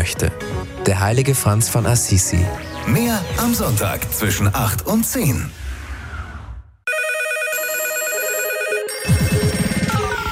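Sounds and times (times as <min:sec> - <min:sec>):
speech: 0:00.1 - 0:05.6
several telephones ringing: 0:06.9 - 0:10.2.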